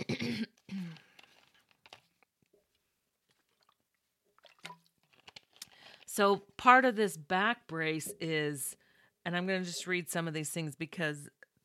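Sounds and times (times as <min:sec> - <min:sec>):
soft throat-clearing sound: 0:00.0 - 0:01.0
person sipping and swallowing water: 0:03.2 - 0:05.8
wet slurps and gulps of water: 0:03.3 - 0:04.9
speech: 0:06.2 - 0:11.6.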